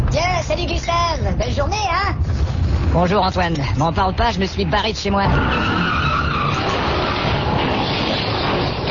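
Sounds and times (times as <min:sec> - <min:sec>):
speech: 0:00.2 - 0:06.1
car skidding in a pile-up crash: 0:05.2 - 0:08.9.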